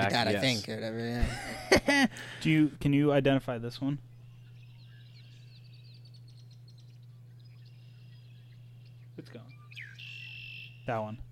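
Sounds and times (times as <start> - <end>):
speech: 0.0 - 4.1, 10.9 - 11.3
steady low electrical hum: 0.0 - 11.3
laughter: 1.1 - 2.3
red-winged blackbird calling with thin buzzy trills: 3.0 - 11.3.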